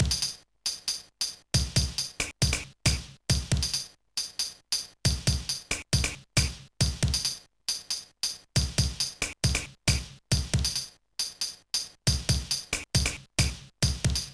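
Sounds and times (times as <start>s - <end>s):
dynamic drums pattern: 0.0s - 0.4s, 1.6s - 3.8s, 5.1s - 7.4s, 8.6s - 14.3s.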